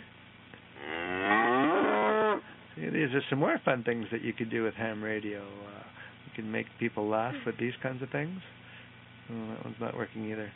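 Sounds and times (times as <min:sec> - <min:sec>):
cow mooing played as a sound effect: 0:00.7 - 0:02.5
speech: 0:03.1 - 0:08.6, 0:09.3 - 0:10.5.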